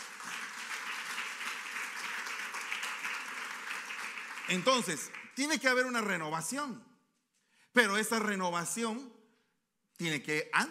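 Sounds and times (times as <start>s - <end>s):
large crowd applauding loudly: 0.0s - 6.0s
speech: 4.5s - 6.9s, 7.8s - 9.2s, 10.0s - 10.6s.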